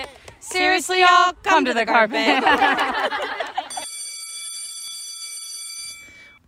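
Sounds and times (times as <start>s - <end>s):
speech: 0.8s - 3.4s
laughter: 2.2s - 3.8s
school bell ringing: 3.7s - 6.4s.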